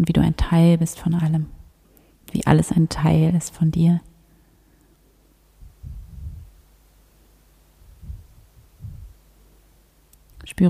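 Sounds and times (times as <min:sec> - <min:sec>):
speech: 0:00.0 - 0:01.6, 0:02.3 - 0:04.1, 0:10.5 - 0:10.6
faint hum: 0:00.0 - 0:10.6
slow deep heartbeat: 0:05.6 - 0:06.6, 0:07.8 - 0:09.2.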